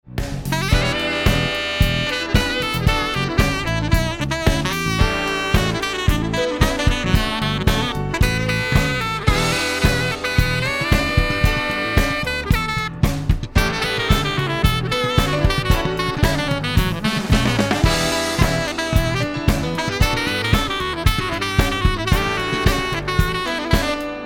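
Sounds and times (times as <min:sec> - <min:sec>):
saxophone solo in a mix: 0:00.4 - 0:24.2.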